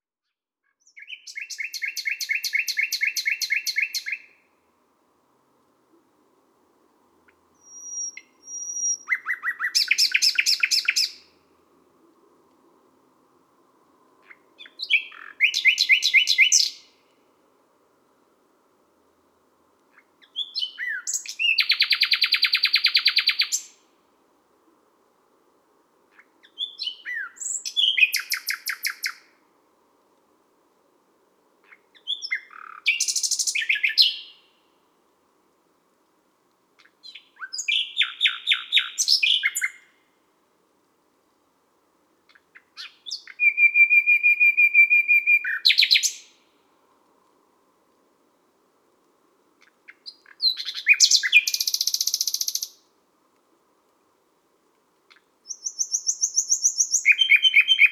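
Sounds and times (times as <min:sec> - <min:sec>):
common nightingale singing at midnight in Les Salelles, Ardeche: 0:00.7 - 0:04.4, 0:07.3 - 0:11.3, 0:14.2 - 0:17.0, 0:19.9 - 0:23.9, 0:26.1 - 0:29.3, 0:31.6 - 0:34.6, 0:36.8 - 0:40.0, 0:42.3 - 0:46.5, 0:49.6 - 0:52.9, 0:55.1 - 0:57.9.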